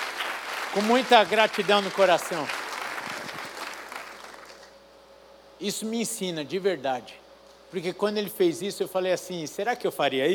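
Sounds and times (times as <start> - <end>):
audience applauding: 0.0 - 4.7
speech: 0.7 - 2.6, 5.6 - 10.3.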